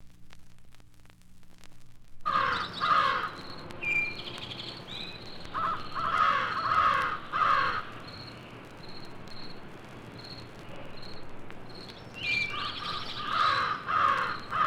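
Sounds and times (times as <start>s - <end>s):
crows cawing in harsh bursts: 2.2s - 3.6s, 5.5s - 8.0s, 12.4s - 14.6s.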